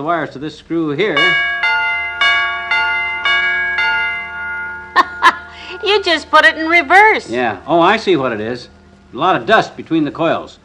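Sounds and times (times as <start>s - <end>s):
speech: 0.0s - 1.5s, 5.8s - 10.6s
electric doorbell hammer striking a metal chime pipe: 1.2s - 6.2s.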